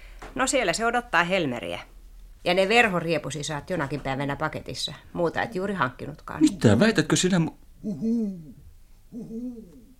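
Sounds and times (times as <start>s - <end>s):
speech: 0.4s - 9.8s
owl hooting: 7.8s - 9.9s.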